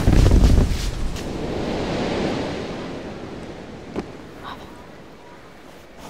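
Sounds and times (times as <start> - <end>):
whoosh of flames from a luggage cart in a phosphorus fire: 0.0 - 4.4.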